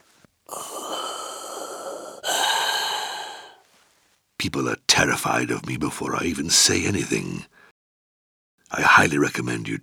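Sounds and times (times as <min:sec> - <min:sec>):
mechanical breath through a scuba regulator with microphone inside: 0:00.5 - 0:03.6
speech: 0:04.4 - 0:07.6, 0:08.8 - 0:09.8.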